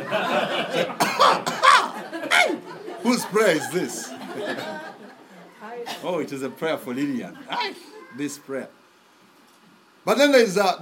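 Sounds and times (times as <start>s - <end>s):
laughter: 0.0s - 5.6s
person imitating a cough: 1.0s - 1.9s
speech: 3.1s - 4.9s, 5.9s - 8.8s, 10.0s - 10.8s.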